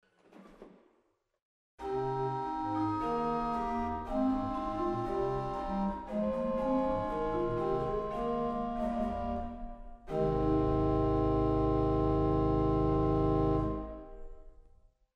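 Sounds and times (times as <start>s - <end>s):
Gross Qvintadena 16 organ stop in Waltershausen: 2.1s - 14.2s.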